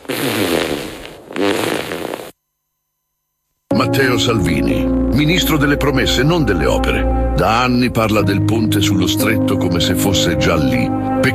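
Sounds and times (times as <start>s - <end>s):
fart sound effect: 0.0s - 2.4s
speech: 3.8s - 11.3s.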